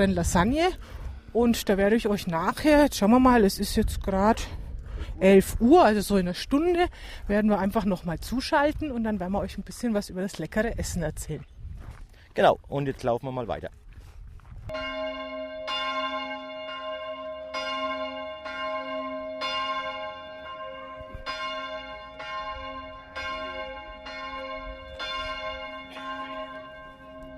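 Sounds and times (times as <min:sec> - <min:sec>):
speech: 0:00.0 - 0:11.5, 0:12.4 - 0:13.8, 0:14.7 - 0:15.1
church bells ringing at noon: 0:14.7 - 0:27.3.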